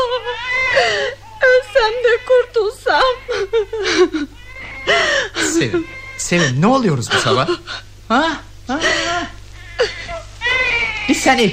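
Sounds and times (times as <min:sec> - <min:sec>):
young child whimpering and crying in wavering sobs: 0:00.0 - 0:06.6, 0:08.7 - 0:11.2
low steady hum: 0:00.0 - 0:11.5
speech: 0:01.8 - 0:04.3, 0:04.9 - 0:09.0, 0:11.2 - 0:11.5.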